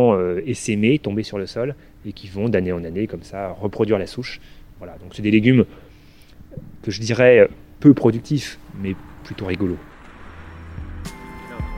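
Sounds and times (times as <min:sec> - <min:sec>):
speech: 0:00.0 - 0:05.8, 0:06.6 - 0:09.9
car passing on a city street: 0:08.0 - 0:11.7.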